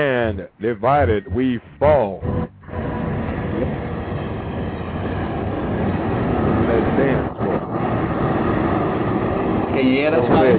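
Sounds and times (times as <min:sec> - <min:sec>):
speech: 0:00.0 - 0:02.4, 0:09.8 - 0:10.5
steady broadband rumble: 0:00.0 - 0:10.5.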